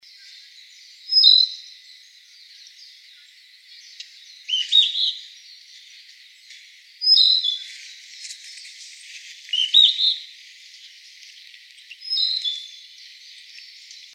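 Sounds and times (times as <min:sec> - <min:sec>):
Narcissus flycatcher whistled song: 0:01.0 - 0:01.7, 0:03.9 - 0:05.2, 0:07.0 - 0:07.7, 0:09.5 - 0:10.3, 0:11.9 - 0:12.9.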